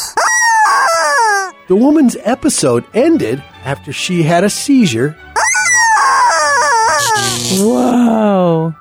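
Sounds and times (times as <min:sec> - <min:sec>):
woman imitating chicken clucking: 0:00.0 - 0:01.6, 0:05.4 - 0:08.0
speech: 0:01.7 - 0:05.3, 0:07.4 - 0:08.7.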